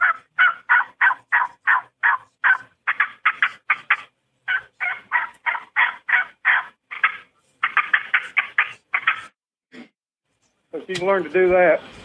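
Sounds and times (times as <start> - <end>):
turkey hunting calls imitating clucks, cuts and yelps: 0.0 - 9.4
speech: 10.9 - 12.0.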